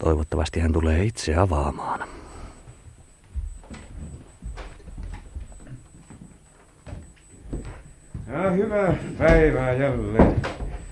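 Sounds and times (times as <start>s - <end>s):
speech: 0.0s - 2.2s, 8.3s - 10.6s
quiet hum: 0.0s - 10.8s
heavy footsteps behind a closed door: 2.4s - 10.8s.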